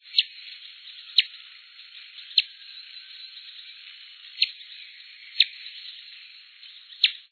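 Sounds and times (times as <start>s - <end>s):
black hummingbird: 0.0s - 7.3s.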